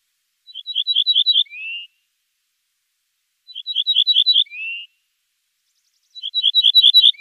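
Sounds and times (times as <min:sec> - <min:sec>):
Ortolan Bunting singing: 0:00.5 - 0:02.0, 0:03.5 - 0:05.0, 0:05.6 - 0:07.1.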